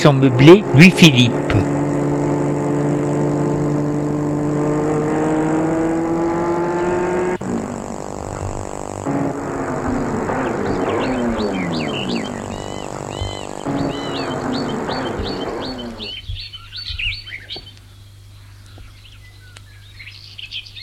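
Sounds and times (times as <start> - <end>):
speech: 0.0 - 1.4
car engine humming as it pulls up at an old house: 0.0 - 16.5
rougher mechanical rumbling: 0.0 - 16.5
brief rising whine: 1.0 - 16.2.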